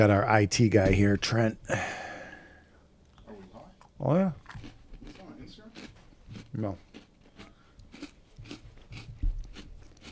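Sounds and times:
speech: 0.0s - 2.0s, 4.0s - 4.4s, 6.5s - 6.8s
crunchy chewing of peanut butter sandwich cookies: 3.2s - 10.1s.

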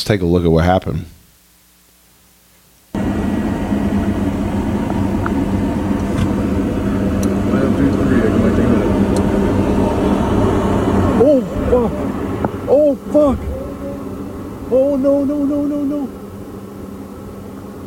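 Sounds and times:
speech: 0.1s - 1.2s
airplane engine roar on a snowy runway: 3.0s - 17.8s.

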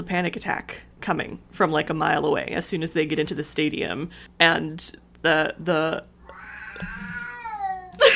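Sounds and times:
speech: 0.0s - 6.1s, 6.8s - 7.2s
cat meowing: 6.2s - 8.0s.

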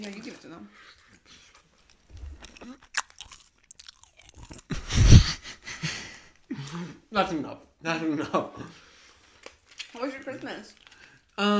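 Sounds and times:
speech: 0.0s - 1.4s, 6.7s - 8.8s, 10.0s - 10.8s, 11.4s - 11.5s
crunching and chewing Skittles candy: 0.0s - 5.1s, 9.0s - 11.4s.

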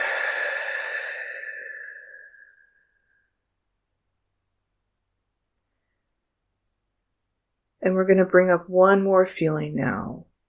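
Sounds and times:
deep breath out through the mouth: 0.0s - 3.2s
speech: 7.8s - 10.3s.

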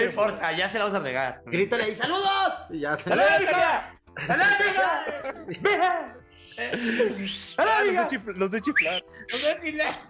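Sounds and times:
speech: 0.0s - 10.0s
laughter: 3.0s - 7.6s
breathy sounds: 6.3s - 7.6s
person whistling loudly in sharp bursts: 8.7s - 9.4s.

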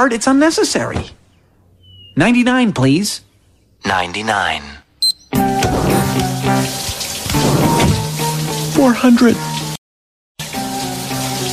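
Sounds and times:
speech: 0.0s - 1.2s, 2.2s - 6.8s, 8.8s - 9.5s
shower water spraying: 5.4s - 9.8s, 10.4s - 11.5s.

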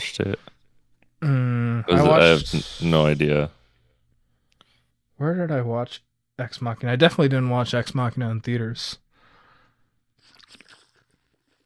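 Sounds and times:
speech: 0.2s - 0.5s, 1.2s - 3.6s, 5.2s - 9.0s
sipping a drink: 10.2s - 11.6s
wet slurping: 10.2s - 11.6s.

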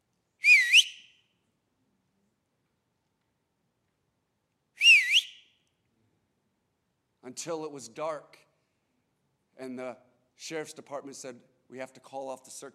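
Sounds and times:
teenager whistling call signals in the woods: 0.4s - 1.2s, 4.8s - 5.5s
speech: 7.3s - 8.5s, 9.6s - 12.7s.

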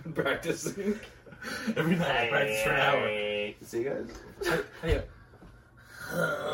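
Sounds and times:
speech: 0.2s - 5.1s
person attempting Mongolian throat singing: 6.0s - 6.5s.

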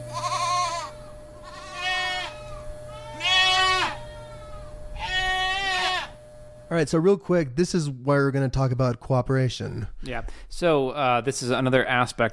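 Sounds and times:
angry black goats bleating in a pen: 0.0s - 6.2s
faint steady hum: 0.0s - 12.3s
speech: 6.7s - 12.3s.

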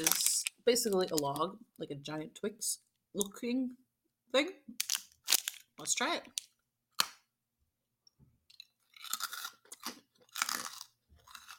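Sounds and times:
speech: 0.7s - 4.9s, 5.8s - 6.5s
biting into a crunchy log-shaped honeycomb candy bar: 8.5s - 11.5s.

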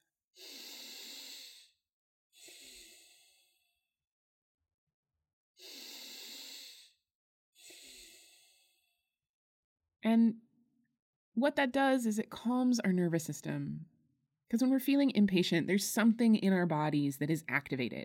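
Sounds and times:
deep breaths taken slowly: 0.4s - 1.8s, 2.4s - 3.8s, 5.6s - 7.0s, 7.6s - 9.1s
speech: 10.1s - 10.4s, 11.4s - 13.9s, 14.5s - 18.0s.

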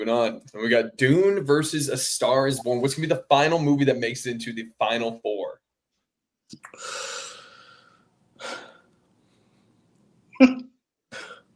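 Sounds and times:
speech: 0.0s - 5.3s, 6.5s - 7.1s, 10.4s - 10.6s
heavy breathing: 6.7s - 9.7s.

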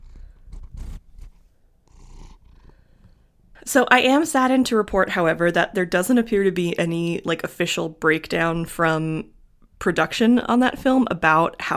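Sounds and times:
cat purring: 0.0s - 3.3s
speech: 3.6s - 11.7s.

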